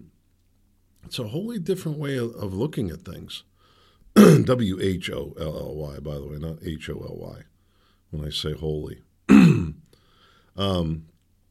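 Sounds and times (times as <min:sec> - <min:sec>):
speech: 0:01.1 - 0:03.5, 0:04.2 - 0:07.5, 0:08.1 - 0:09.8, 0:10.6 - 0:11.1
person coughing after a vaccine shot: 0:04.2 - 0:04.5, 0:09.3 - 0:09.8.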